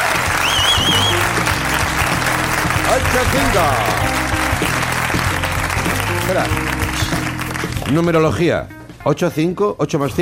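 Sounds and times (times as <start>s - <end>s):
applause from an audience of 85 people: 0.0s - 8.0s
faint whistle: 0.4s - 1.2s
speech: 2.9s - 4.1s, 6.3s - 10.1s.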